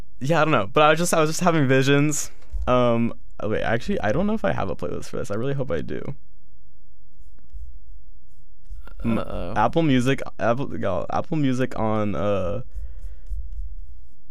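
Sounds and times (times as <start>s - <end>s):
speech: 0.2s - 6.3s, 9.0s - 12.8s
fingers rubbing and sliding on a laptop touchpad: 7.2s - 9.0s, 12.6s - 14.2s.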